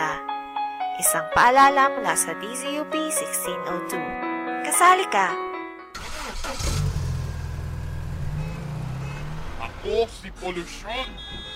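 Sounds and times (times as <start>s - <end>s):
speech: 1.0s - 5.5s, 9.8s - 11.5s
car engine starting and revving: 6.0s - 10.8s.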